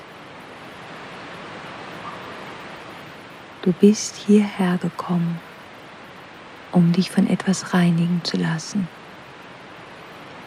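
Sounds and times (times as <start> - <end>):
waterfall rushing across a small lake: 0.0 - 10.4
speech: 3.6 - 5.5, 6.7 - 9.0.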